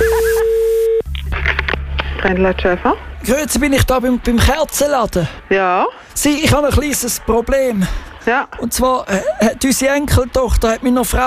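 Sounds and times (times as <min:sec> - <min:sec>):
steady single-pitched telephone line tone: 0:00.0 - 0:01.1
speech: 0:02.2 - 0:11.2.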